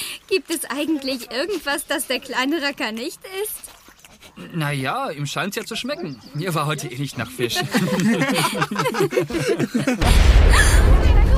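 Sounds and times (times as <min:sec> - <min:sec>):
speech: 0:00.3 - 0:03.8, 0:04.4 - 0:11.0
person chuckling: 0:07.7 - 0:10.8
loud explosion with deep rumbling roar: 0:10.0 - 0:11.3.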